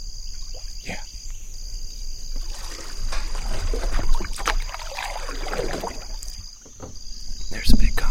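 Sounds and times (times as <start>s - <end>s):
water splashing and rushing around a small boat hull in a shallow stream: 0.3s - 0.9s, 2.2s - 7.9s.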